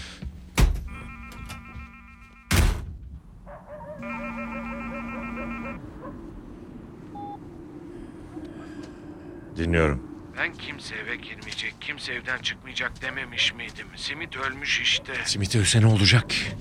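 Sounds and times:
electronic mobile phone dialing tones: 0.9 - 2.5, 4.0 - 5.8, 7.1 - 7.4
speech: 9.6 - 16.6.

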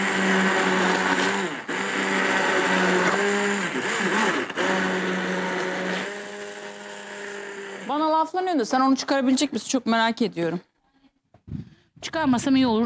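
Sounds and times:
electric food chopper motor whirring while chopping: 0.0 - 8.2
speech: 8.6 - 10.7, 12.2 - 12.8.

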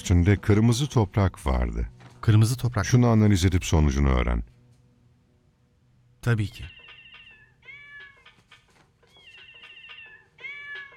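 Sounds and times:
speech: 0.0 - 4.6, 6.2 - 6.8
cat meowing in drawn-out wavering cries: 6.7 - 8.6, 9.2 - 10.9.

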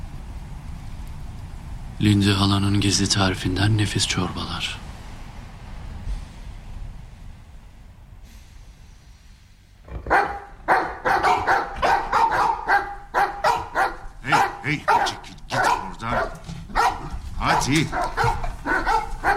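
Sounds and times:
low noise: 0.0 - 19.3
speech: 2.0 - 4.9
several dogs barking loudly and rapidly: 9.9 - 19.3.

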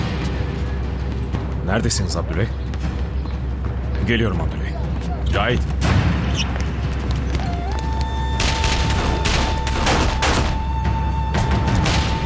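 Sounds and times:
rumbling noise: 0.0 - 12.2
speech: 1.7 - 2.7, 4.1 - 6.5
gunfire during an ambush firefight: 8.4 - 10.7.

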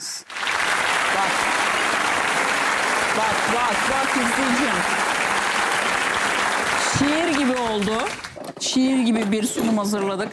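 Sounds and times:
audience applause for a dish presentation: 0.2 - 8.4
speech: 3.2 - 5.0, 7.0 - 10.3.

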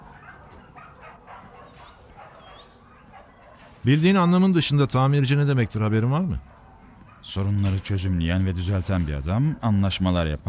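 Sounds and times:
dogs barking, yipping and whimpering at an animal shelter: 0.0 - 3.9, 6.4 - 7.3
speech: 3.8 - 6.6, 7.2 - 10.4.

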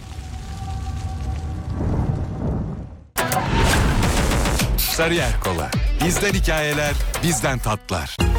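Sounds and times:
heavy low rumbling roar: 0.0 - 3.2
loud explosion with a sharp crackling blast: 0.0 - 5.0
speech: 5.0 - 8.2.

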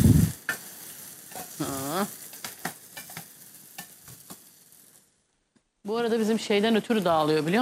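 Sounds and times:
vermicelli sizzling as it toasts in a hot pot: 0.0 - 7.5
speech: 1.6 - 2.2, 6.1 - 7.5
stirring clicks and scrapes in a pot: 2.3 - 4.5.

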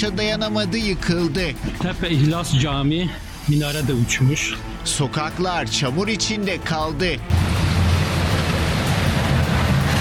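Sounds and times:
speech: 0.0 - 7.6
heavy rain downpour over Diyarbakır: 7.3 - 9.9.

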